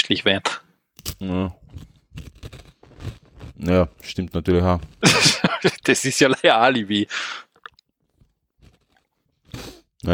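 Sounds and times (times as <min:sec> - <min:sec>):
speech: 0:00.1 - 0:00.6, 0:01.2 - 0:02.4, 0:03.6 - 0:07.4
person chewing and crunching food with loud smacking: 0:01.0 - 0:05.9, 0:07.4 - 0:10.1
laughter: 0:05.0 - 0:06.6.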